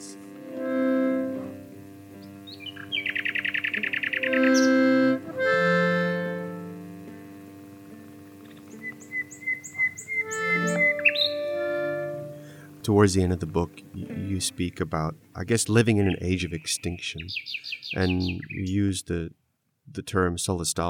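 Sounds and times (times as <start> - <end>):
faint hum: 0.0 - 20.8
nightingale singing: 2.1 - 5.2, 8.3 - 12.1, 15.6 - 18.8
speech: 12.9 - 20.8.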